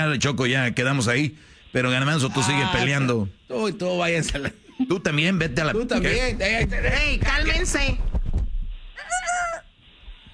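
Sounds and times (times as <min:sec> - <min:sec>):
speech: 0:00.0 - 0:08.1
faint noise: 0:00.0 - 0:10.3
rooster crowing: 0:09.0 - 0:09.7.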